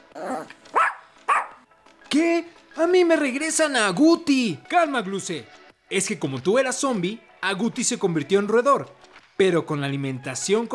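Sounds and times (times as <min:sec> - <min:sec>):
chihuahua grumbling: 0:00.0 - 0:00.6
small female chihuahua yapping: 0:00.2 - 0:01.6
speech: 0:02.1 - 0:10.7.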